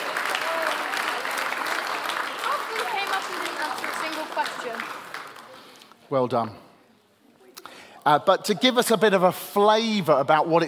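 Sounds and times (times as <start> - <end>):
sizable audience applauding at a camp gathering: 0.0 - 5.9
speech: 6.1 - 6.7, 8.0 - 10.6.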